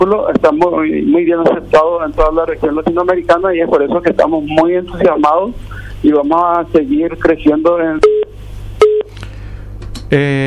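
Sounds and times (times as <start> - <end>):
speech: 0.0 - 8.3, 10.1 - 10.4
call-waiting beep on a phone line: 8.0 - 9.1.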